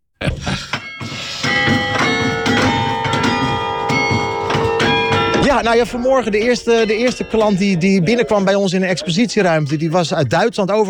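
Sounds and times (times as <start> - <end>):
church bells played by a person playing a slow song melody: 0.8 - 8.7
speech: 5.6 - 10.8.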